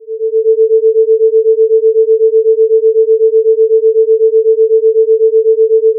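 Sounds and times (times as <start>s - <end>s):
440 Hz and 448 Hz sine tones summed in mono: 0.0s - 5.9s.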